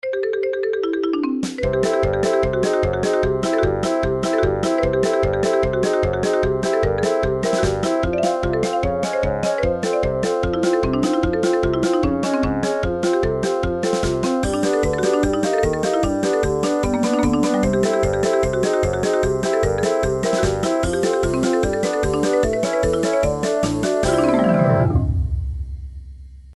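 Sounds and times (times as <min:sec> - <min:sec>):
marimba lick remix: 0:00.0 - 0:25.0.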